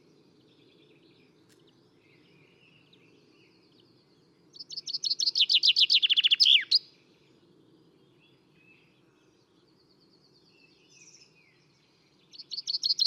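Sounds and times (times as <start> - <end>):
common chaffinch Fringilla coelebs singing a rapid descending trill: 4.7 - 6.8
faint other bird calls: 4.8 - 6.8.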